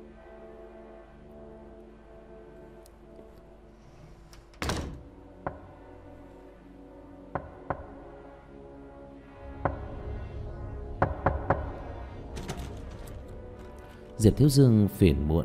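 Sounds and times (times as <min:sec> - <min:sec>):
knocking on a door at night: 0:05.4 - 0:05.7, 0:07.3 - 0:08.0, 0:11.0 - 0:11.8
speech: 0:14.2 - 0:15.4.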